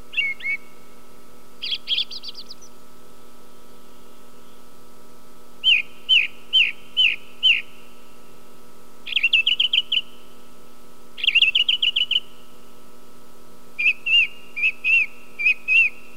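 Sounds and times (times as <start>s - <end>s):
song thrush singing: 0.0s - 0.8s, 1.6s - 2.8s, 5.6s - 7.9s, 9.0s - 10.2s, 11.2s - 12.3s, 13.8s - 16.1s.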